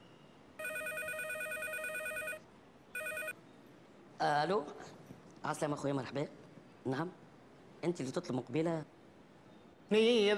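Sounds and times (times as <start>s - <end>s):
telephone ringing: 0.6s - 2.4s, 3.0s - 3.4s
speech: 4.2s - 7.2s, 7.8s - 8.9s, 9.9s - 10.3s.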